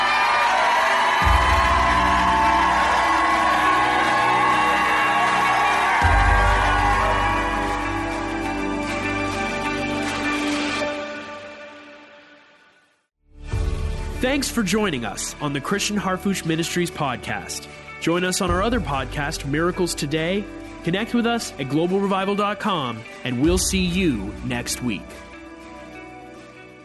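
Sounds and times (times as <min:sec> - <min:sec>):
large indoor crowd shouting and cheering: 0:00.0 - 0:10.7
speech: 0:14.3 - 0:25.3.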